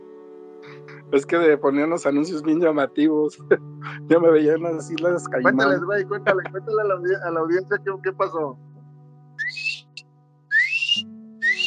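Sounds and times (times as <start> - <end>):
speech: 1.1 - 8.7
laughter: 5.5 - 6.8
short rising whistle chirps sound effect: 9.4 - 11.6.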